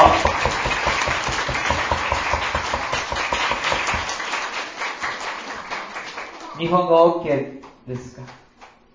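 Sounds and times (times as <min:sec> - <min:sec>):
church audience applauding at a service: 0:00.0 - 0:06.6
speech: 0:06.6 - 0:08.4.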